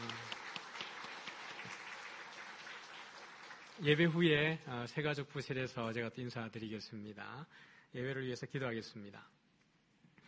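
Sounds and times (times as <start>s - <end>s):
church audience applauding during a worship service: 0.0s - 4.3s
speech: 3.8s - 9.4s.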